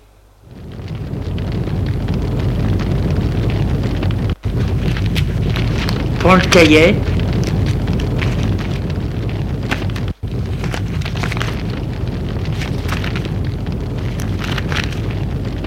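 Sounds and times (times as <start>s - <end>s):
fireplace fire crackling and roaring: 0.0s - 15.6s
speech: 6.3s - 7.2s.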